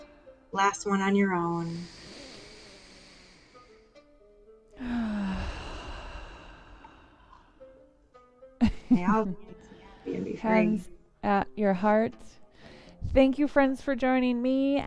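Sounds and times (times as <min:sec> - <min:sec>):
speech: 0:00.5 - 0:02.0, 0:08.9 - 0:12.4, 0:13.1 - 0:14.8
deep breath in through the nose and out through the mouth: 0:01.6 - 0:04.0, 0:04.8 - 0:07.8, 0:12.5 - 0:13.0
person speaking calmly: 0:09.0 - 0:10.9.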